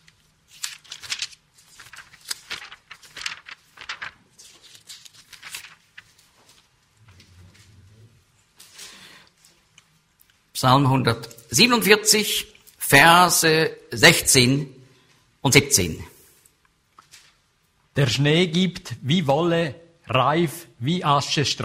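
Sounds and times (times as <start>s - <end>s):
thin Bible pages being flipped quickly: 0.0s - 10.5s, 16.5s - 17.7s
speech: 10.6s - 14.8s, 15.4s - 16.1s, 18.0s - 21.6s.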